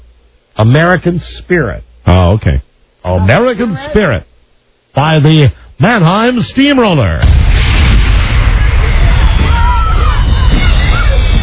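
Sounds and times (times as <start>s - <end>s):
speech: 0.6s - 4.3s, 5.0s - 7.4s
fireworks booming and crackling: 7.2s - 11.4s.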